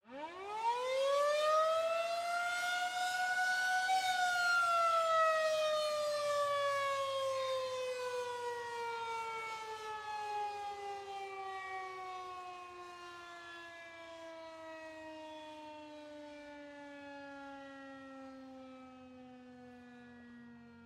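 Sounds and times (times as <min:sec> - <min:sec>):
loud distant wailing prolonged evacuation warning siren: 0:00.0 - 0:20.8.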